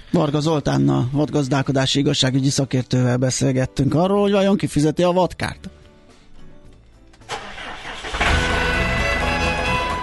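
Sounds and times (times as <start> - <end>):
speech: 0.1 - 5.8
farm cultivator engine cranking and idling: 7.2 - 10.0.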